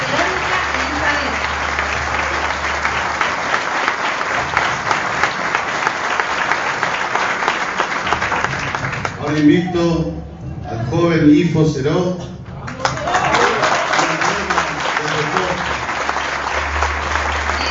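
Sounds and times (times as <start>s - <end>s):
audience applause at an event where officials are introduced: 0.0s - 9.6s, 12.7s - 17.6s
speech: 9.4s - 10.2s, 11.2s - 12.3s.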